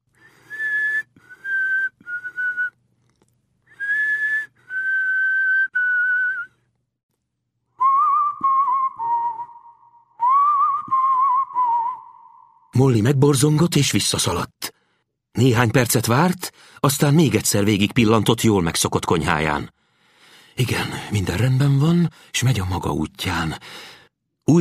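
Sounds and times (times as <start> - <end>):
person whistling a melody in a house: 0.2 - 2.8, 3.7 - 6.6, 7.8 - 12.7
speech: 12.8 - 14.5, 15.4 - 19.8, 20.6 - 24.5.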